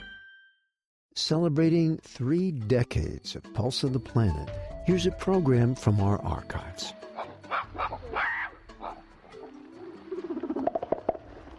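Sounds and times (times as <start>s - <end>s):
speech: 1.2s - 7.0s
mountain gorilla grunting in East Africa: 6.8s - 9.1s.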